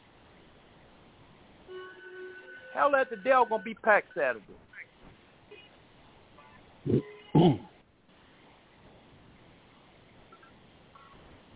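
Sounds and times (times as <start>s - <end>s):
speech: 2.8s - 4.7s
man coughing through a telephone line: 6.9s - 7.8s.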